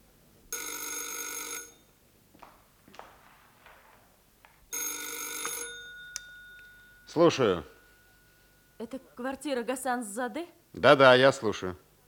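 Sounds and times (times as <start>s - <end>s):
telephone bell ringing: 0.5s - 2.0s, 4.7s - 9.0s
footsteps: 2.2s - 4.7s
speech: 7.1s - 7.8s, 8.8s - 11.8s.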